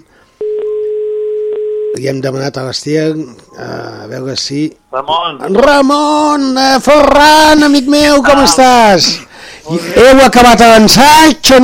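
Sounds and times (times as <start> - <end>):
telephone ringing tone while placing a call: 0.4 - 2.0
speech: 2.0 - 11.6.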